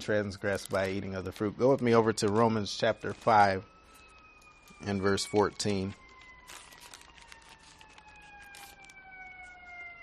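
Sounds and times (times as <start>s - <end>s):
speech: 0.0s - 3.7s, 4.8s - 6.0s
emergency vehicle sirens wailing outside: 0.0s - 10.0s.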